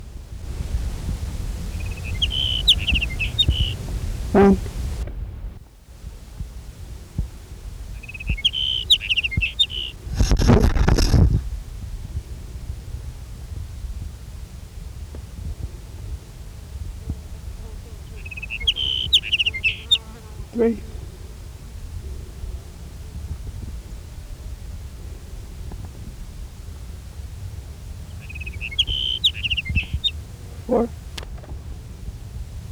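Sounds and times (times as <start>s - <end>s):
sage sparrow song in California: 0.2s - 5.0s, 7.4s - 11.4s, 17.6s - 22.5s, 27.4s - 32.0s
speech: 4.4s - 4.7s, 20.6s - 20.8s.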